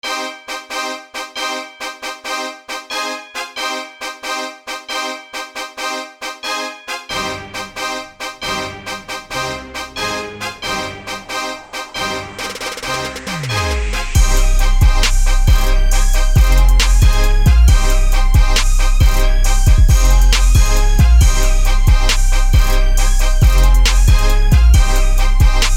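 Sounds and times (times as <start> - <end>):
trap beat: 7.1 - 25.7.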